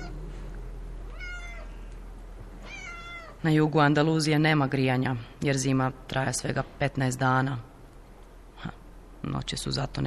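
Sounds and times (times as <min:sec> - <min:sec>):
steady low hum: 0:00.0 - 0:10.0
cats yowling on a cold winter night in southern Andalusia: 0:01.1 - 0:01.8, 0:02.6 - 0:03.4
speech: 0:03.4 - 0:07.7, 0:08.6 - 0:10.0.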